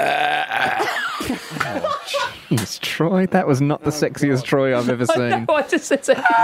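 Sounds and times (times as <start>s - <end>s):
long loud croaky burp: 0.0s - 1.0s
laughter: 0.7s - 2.6s, 4.8s - 6.4s
speech: 2.5s - 6.4s.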